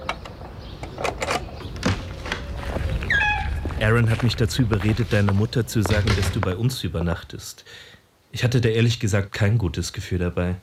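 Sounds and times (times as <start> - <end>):
door being unlocked and opened: 0.0 - 2.5
speech: 3.8 - 10.6.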